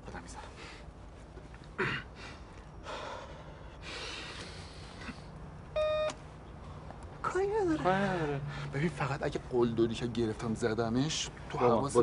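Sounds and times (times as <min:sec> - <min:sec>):
phone beeping as a call is placed: 0:05.8 - 0:06.2
speech: 0:07.8 - 0:12.0.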